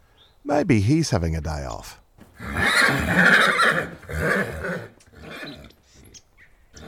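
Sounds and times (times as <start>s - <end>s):
speech: 0.4s - 4.9s
horse snorting and whinnying in Tasmania: 2.3s - 6.8s.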